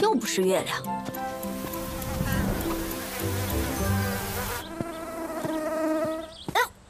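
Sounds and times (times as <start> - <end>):
speech: 0.1 - 1.0
mosquitoes buzzing in a droning whine: 1.1 - 6.5.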